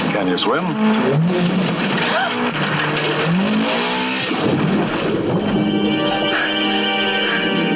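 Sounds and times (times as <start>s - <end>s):
Lotus Esprit sports car engine revving: 0.0s - 5.7s
tires squealing: 0.0s - 7.7s
speech: 0.2s - 3.8s, 4.4s - 6.2s.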